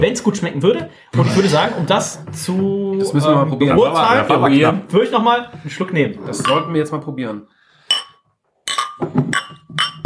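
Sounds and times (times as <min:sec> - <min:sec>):
speech: 0:00.0 - 0:07.6, 0:09.0 - 0:10.0
laughter: 0:01.1 - 0:02.2
glasses clinking in a toast: 0:06.4 - 0:07.0, 0:07.8 - 0:10.0.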